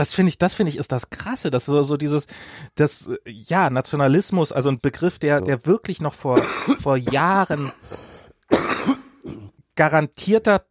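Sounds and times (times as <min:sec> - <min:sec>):
speech: 0:00.0 - 0:08.1, 0:09.8 - 0:10.7
harsh coughing: 0:06.4 - 0:09.6.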